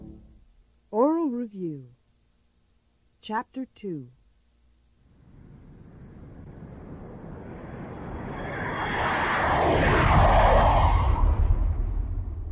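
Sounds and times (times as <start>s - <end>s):
airplane passing by with engine roar: 0.0s - 0.4s, 6.0s - 12.4s
speech: 0.9s - 2.0s, 3.2s - 4.2s.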